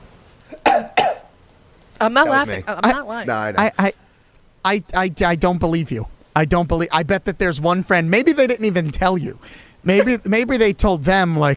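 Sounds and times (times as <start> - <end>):
person coughing: 0.5 - 1.3, 10.0 - 10.2
speech: 2.0 - 4.0, 4.6 - 11.5.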